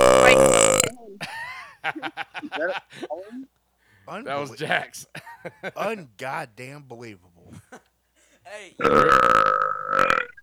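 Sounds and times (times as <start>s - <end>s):
person belching: 0.0s - 1.2s, 8.8s - 10.4s
throaty vocal sound: 0.0s - 1.2s, 8.8s - 10.4s
laughter: 1.2s - 3.5s, 4.3s - 6.1s, 7.4s - 7.9s
speech: 1.9s - 7.8s, 8.5s - 10.0s.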